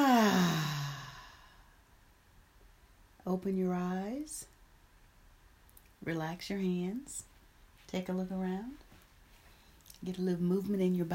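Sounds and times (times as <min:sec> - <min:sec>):
person breathing in and out during a guided breathing exercise: 0:00.0 - 0:01.8
speech: 0:03.3 - 0:04.5, 0:06.0 - 0:07.3, 0:07.9 - 0:08.9, 0:10.0 - 0:11.1.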